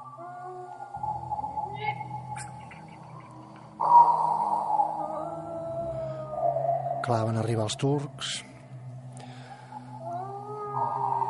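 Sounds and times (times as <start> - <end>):
wolf howling beside the Danube: 0.0 - 7.4, 9.7 - 11.2
speech: 7.1 - 8.5.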